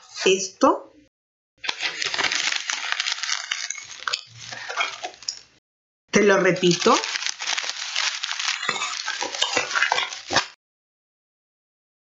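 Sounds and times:
speech: 0.2 - 0.9, 6.2 - 7.2
sheet of paper being crumpled: 1.6 - 5.4, 6.6 - 10.6.

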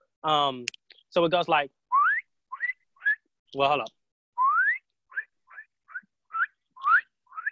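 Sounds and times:
speech: 0.2 - 1.8, 3.5 - 4.0
high-pitched upward-sweeping animal chirps: 2.0 - 3.2, 4.4 - 7.5.

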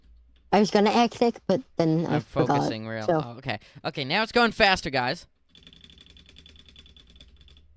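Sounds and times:
speech: 0.5 - 5.7
keyboard keys clicking: 5.6 - 7.6.

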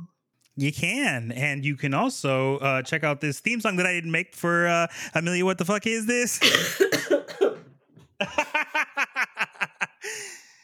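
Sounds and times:
speech: 0.6 - 7.2
person coughing: 6.4 - 7.7
suppressed laugh with breathy snorts: 8.2 - 10.1
wheeze: 10.0 - 10.6.

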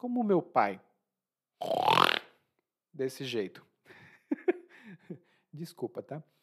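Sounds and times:
speech: 0.0 - 0.9, 1.6 - 2.0, 3.0 - 3.7, 4.9 - 6.4
person mimicking a loud snore with their voice: 1.6 - 2.2
laughter: 4.1 - 5.2.

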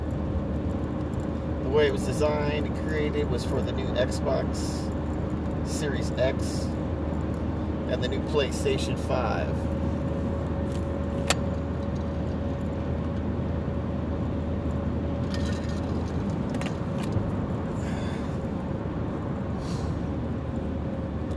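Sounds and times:
road roar of a car driving on the highway between Omaha and Lincoln, Nebraska: 0.0 - 21.3
speech: 1.7 - 5.0, 5.7 - 6.8, 7.9 - 9.8.

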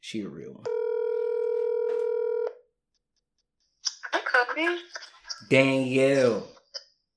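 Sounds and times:
speech: 0.0 - 0.8, 4.6 - 6.6
steady buzzy telephone dialing tone: 0.7 - 2.5.

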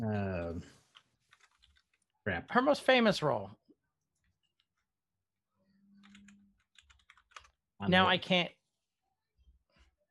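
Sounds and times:
clattering keystrokes on a computer keyboard: 0.8 - 2.1, 5.9 - 7.7
speech: 2.3 - 3.6, 7.8 - 8.6.

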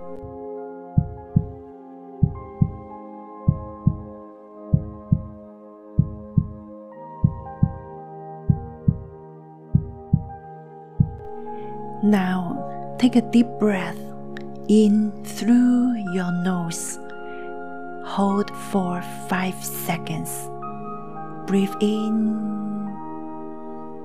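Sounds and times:
steady heartbeat thumping in lub-dub pairs: 1.0 - 1.6, 2.2 - 2.9, 3.5 - 4.1, 4.7 - 5.4, 6.0 - 6.6, 7.2 - 7.9, 8.5 - 9.1, 9.8 - 10.4, 11.0 - 11.2
speech: 12.0 - 12.4, 13.0 - 14.0, 14.7 - 17.0, 18.0 - 20.5, 21.5 - 22.7.

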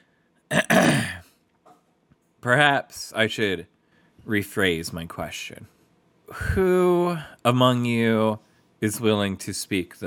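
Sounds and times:
man clearing his throat: 0.5 - 1.3
speech: 2.4 - 10.0.

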